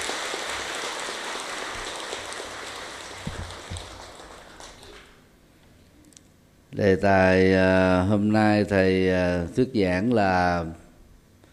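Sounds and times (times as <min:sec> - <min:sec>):
large crowd clapping: 0:00.0 - 0:05.2
speech: 0:06.8 - 0:10.8.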